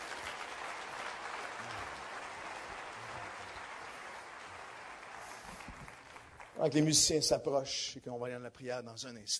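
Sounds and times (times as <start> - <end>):
congregation applauding: 0.0 - 7.0
speech: 6.6 - 9.3.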